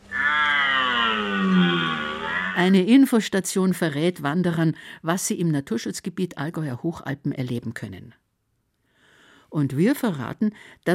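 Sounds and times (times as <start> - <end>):
recorded stag bellowing played from a push-button speaker: 0.0 - 2.7
speech: 2.6 - 8.2, 9.5 - 10.9.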